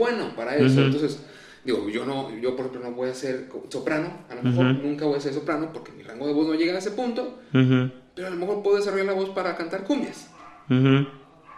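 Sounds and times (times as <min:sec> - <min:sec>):
speech: 0:00.0 - 0:11.2
single short tonal dog bark: 0:10.3 - 0:10.7, 0:11.4 - 0:11.5.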